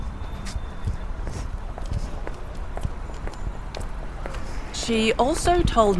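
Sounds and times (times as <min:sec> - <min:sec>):
footsteps of people walking: 0:00.0 - 0:05.9
speech: 0:04.9 - 0:05.9.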